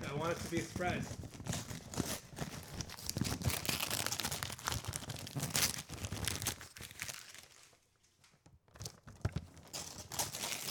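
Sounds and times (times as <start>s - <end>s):
speech: 0.2s - 1.4s
wrapping paper crinkling and tearing as a Christmas gift is unwrapped: 0.2s - 7.8s, 9.7s - 10.6s.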